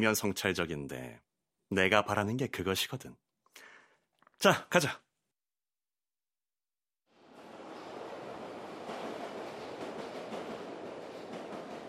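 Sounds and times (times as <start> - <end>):
speech: 0.0 - 3.3, 4.4 - 5.0
underground subway train rumbling along: 7.1 - 11.8.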